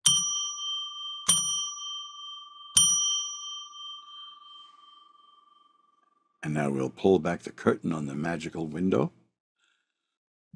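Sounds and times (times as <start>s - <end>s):
bright clear bell struck: 0.0s - 5.9s
speech: 6.4s - 9.2s.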